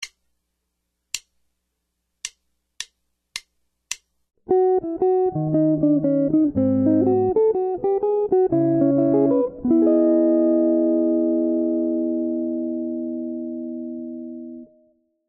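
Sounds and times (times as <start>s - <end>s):
jazz guitar solo arrangement with single bass notes: 4.5s - 14.9s.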